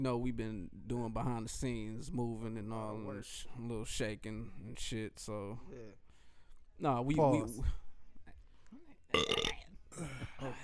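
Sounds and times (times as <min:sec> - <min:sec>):
speech: 0:00.0 - 0:06.0, 0:06.8 - 0:07.8, 0:09.1 - 0:10.6
loud rough burp: 0:09.1 - 0:09.7.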